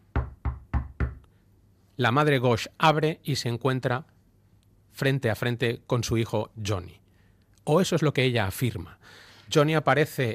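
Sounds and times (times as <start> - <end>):
firm knocks on a door: 0.0 - 1.2
speech: 2.0 - 4.1, 5.0 - 7.0, 7.6 - 10.3.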